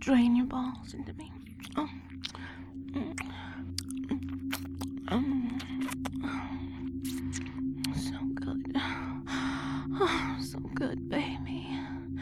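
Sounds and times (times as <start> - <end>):
speech: 0.0 - 2.4, 10.1 - 11.5
steady low hum: 0.0 - 12.1
mouth clicks and smacks: 1.4 - 6.3, 7.0 - 8.0
wet mouth sounds of swallowing and gulping: 1.5 - 6.3
soft breathy noise: 2.3 - 3.7, 6.2 - 7.8, 8.8 - 10.0, 11.7 - 12.1.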